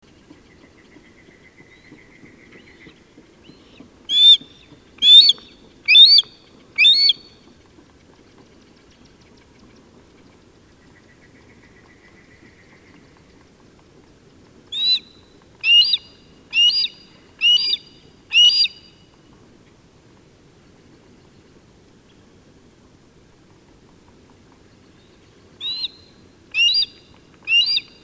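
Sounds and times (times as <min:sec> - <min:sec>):
Harris's hawk Parabuteo unicinctus calling: 0:04.1 - 0:07.2, 0:14.7 - 0:18.9, 0:25.6 - 0:27.9.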